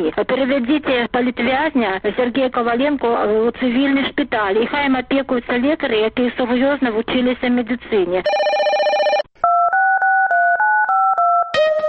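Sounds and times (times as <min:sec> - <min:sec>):
speech: 0:00.0 - 0:09.0
telephone keypad DTMF tones dialing a number: 0:08.3 - 0:11.5.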